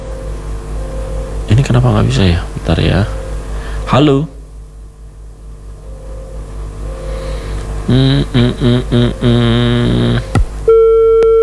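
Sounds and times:
buzzy tonal bursts from a dropped phone call: 0.0s - 11.2s
steady continuous beep from a dropped phone call: 0.0s - 11.4s
speech: 1.7s - 3.2s, 3.9s - 4.3s, 7.9s - 10.3s
phone line click: 7.5s - 7.8s.

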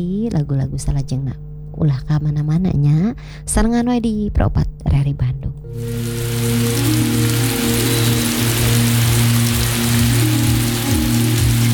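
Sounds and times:
speech: 0.0s - 7.1s
low droning hum: 0.0s - 11.7s
steady rain pouring down: 5.7s - 11.7s.

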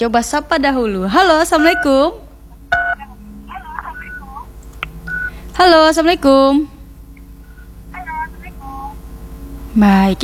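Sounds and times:
speech: 0.0s - 2.2s, 5.6s - 6.8s, 9.8s - 10.2s
faint low hum: 0.0s - 10.2s
two-tone telephone beep on a call-in phone line: 1.6s - 1.9s, 3.8s - 4.4s, 5.1s - 5.3s.

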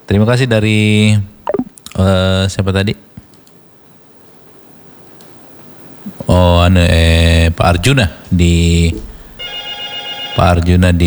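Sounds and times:
speech: 0.1s - 3.1s, 6.7s - 9.1s, 10.4s - 11.0s
ordinary telephone ringing with an electronic trill: 9.4s - 10.7s.

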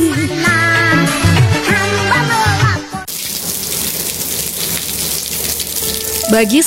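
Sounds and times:
music: 0.0s - 3.1s, 5.8s - 6.6s
steady rain falling: 3.1s - 6.5s
speech: 6.3s - 6.6s.

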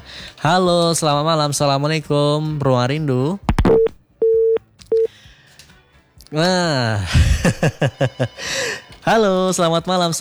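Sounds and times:
speech: 0.4s - 3.9s, 6.3s - 10.1s
telephone busy tone after dropped call: 3.5s - 5.1s
laughter: 7.0s - 8.5s.

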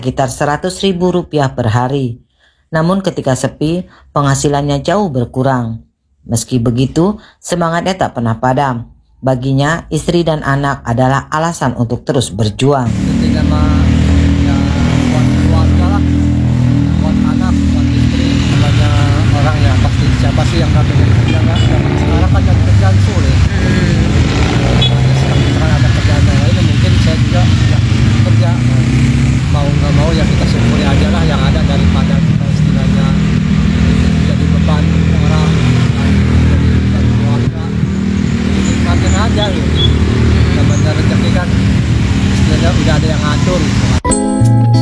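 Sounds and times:
speech: 0.0s - 13.8s
loud dense road traffic: 12.8s - 44.7s
motorcycle engines droning and revving: 12.9s - 44.0s.

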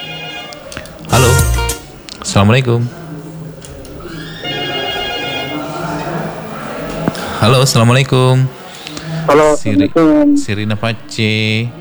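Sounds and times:
telephone ringing for an incoming call on a call-in line: 0.0s - 2.0s, 4.3s - 6.1s
speech: 2.3s - 3.0s, 7.4s - 8.6s, 9.3s - 11.7s.

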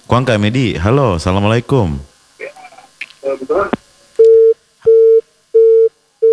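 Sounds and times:
speech: 0.1s - 2.1s, 3.2s - 3.8s
telephone busy tone after dropped call: 3.5s - 6.3s.

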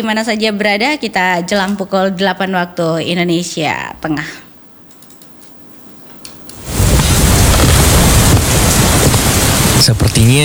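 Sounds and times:
speech: 0.0s - 4.4s, 9.8s - 10.4s
heavy rain: 6.5s - 10.4s.

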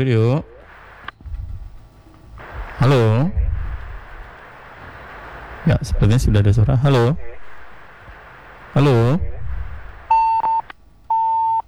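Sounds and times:
speech: 0.0s - 0.6s, 2.8s - 3.4s, 5.7s - 7.4s, 8.7s - 9.4s
faint hiss: 0.0s - 11.6s
phone line disconnection tone beeps during a call-in: 10.1s - 11.6s.

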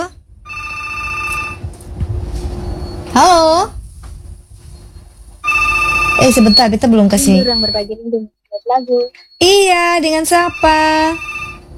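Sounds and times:
WhatsApp call ringtone of layered pure tones: 0.5s - 1.6s, 5.4s - 8.0s, 8.6s - 11.7s
speech: 3.2s - 3.8s, 6.2s - 11.4s.

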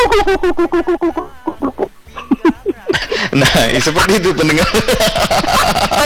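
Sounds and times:
human voice imitating a turkey gobble: 0.0s - 3.1s
laughter: 0.0s - 6.0s
speech: 0.2s - 1.2s, 3.4s - 6.0s.

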